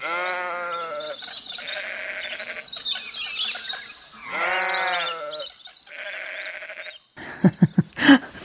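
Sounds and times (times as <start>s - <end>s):
sheep bleating: 0.0s - 2.7s, 4.2s - 7.0s
higher chirping calls: 0.1s - 7.9s.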